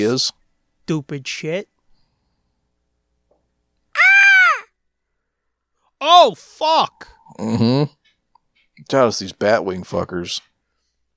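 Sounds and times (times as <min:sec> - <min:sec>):
speech: 0:00.0 - 0:01.7, 0:06.0 - 0:08.0, 0:08.8 - 0:10.5
crow-like bird caw in a film soundtrack: 0:04.0 - 0:04.8.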